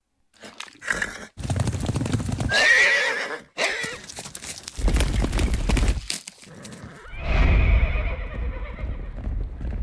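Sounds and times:
horse hooves clip-clopping: 0:01.4 - 0:02.6, 0:03.8 - 0:07.1, 0:08.3 - 0:09.8
horse whinnying: 0:02.5 - 0:04.0, 0:06.5 - 0:09.2.

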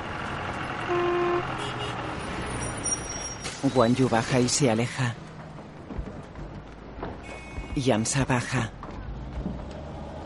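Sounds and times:
bus engine rumble pulling into a train station: 0:00.0 - 0:10.2
bus horn toot: 0:00.9 - 0:02.0
speech: 0:03.6 - 0:05.2, 0:07.8 - 0:08.8.

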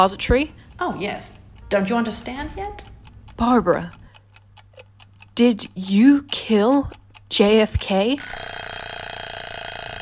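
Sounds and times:
speech: 0:00.0 - 0:04.0, 0:05.4 - 0:08.6
mechanical bell ringing: 0:08.2 - 0:09.9.

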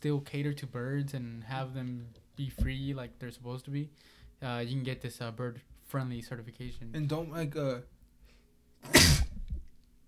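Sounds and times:
speech: 0:00.0 - 0:08.0, 0:08.8 - 0:09.3
person sneezing: 0:08.8 - 0:09.6.

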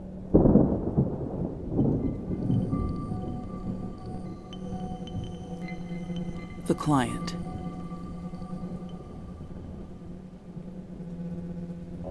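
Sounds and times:
steady hiss of rain falling: 0:00.2 - 0:11.0
loud clap of thunder rolling into a low rumble: 0:00.3 - 0:04.4
speech: 0:06.7 - 0:07.4.

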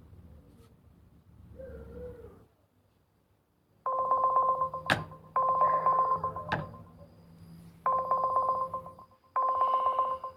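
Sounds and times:
telephone ringback tone on an outgoing call through the handset: 0:03.9 - 0:10.3.

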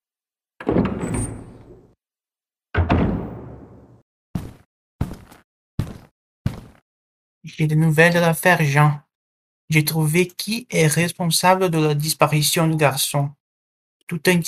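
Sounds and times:
door opening as someone enters a room: 0:00.6 - 0:02.0, 0:02.8 - 0:04.0
short sharp thuds in an even rhythm: 0:02.8 - 0:05.2
speech: 0:07.4 - 0:09.0, 0:09.7 - 0:13.4, 0:14.1 - 0:14.4.

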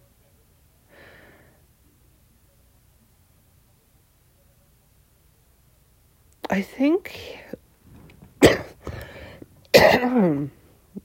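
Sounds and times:
speech: 0:06.5 - 0:07.4, 0:10.0 - 0:10.6
person coughing harshly: 0:08.4 - 0:10.5.

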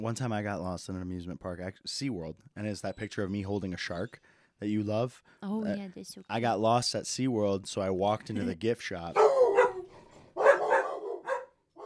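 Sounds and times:
speech: 0:00.0 - 0:09.4
dogs barking: 0:09.2 - 0:11.8.

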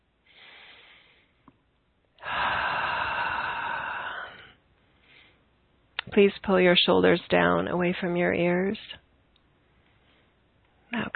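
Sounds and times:
slow deep breathing during a guided relaxation exercise: 0:00.2 - 0:01.5, 0:02.2 - 0:05.5
speech: 0:06.2 - 0:09.0.

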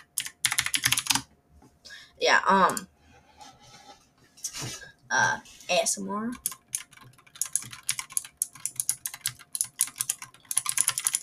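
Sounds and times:
computer keyboard keys being spammed at random: 0:00.0 - 0:01.2, 0:06.4 - 0:11.2
speech: 0:02.2 - 0:02.9, 0:04.6 - 0:06.5.

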